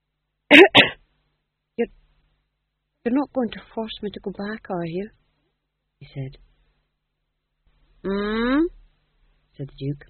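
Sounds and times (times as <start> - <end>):
man coughing: 0.5 - 1.0
speech: 3.1 - 5.2, 6.0 - 6.5, 8.0 - 8.8, 9.6 - 10.0.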